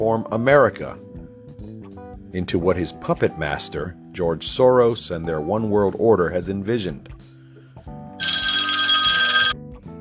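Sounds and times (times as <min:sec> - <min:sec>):
speech: 0:00.0 - 0:01.1, 0:02.3 - 0:07.2
cell phone ringing with an electronic trill: 0:08.2 - 0:09.6.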